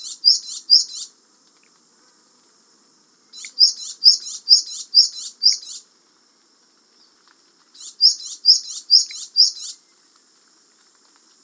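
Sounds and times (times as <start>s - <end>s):
Japanese tit giving high bright double chirps: 0.0s - 1.1s, 3.3s - 5.8s, 7.8s - 9.8s.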